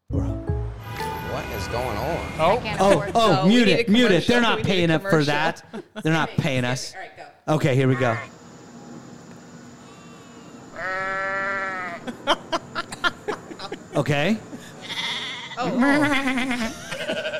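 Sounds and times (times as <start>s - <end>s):
hum: 0.6s - 17.3s
speech: 1.4s - 8.4s, 14.0s - 14.5s, 15.6s - 17.3s
laughter: 2.7s - 6.3s, 12.0s - 14.8s, 15.6s - 17.3s
ram bleating: 10.7s - 12.1s, 14.8s - 15.7s.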